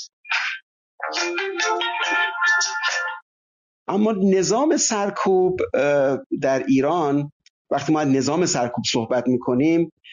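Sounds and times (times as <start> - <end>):
phone ringing with an electronic ringtone: 1.0 - 3.2
speech: 1.1 - 1.8, 3.9 - 10.1.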